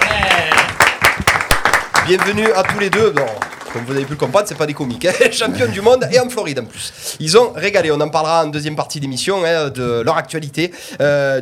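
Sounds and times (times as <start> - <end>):
audience applause: 0.0 - 5.5
speech: 2.1 - 11.4
laughter: 3.9 - 6.4.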